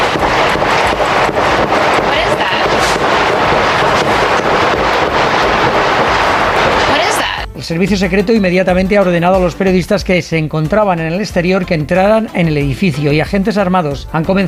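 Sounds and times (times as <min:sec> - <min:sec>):
gunshots: 0:00.0 - 0:07.4
indistinct voices: 0:00.0 - 0:07.8
dense roaring outdoor background: 0:00.0 - 0:13.7
speech: 0:07.7 - 0:14.4.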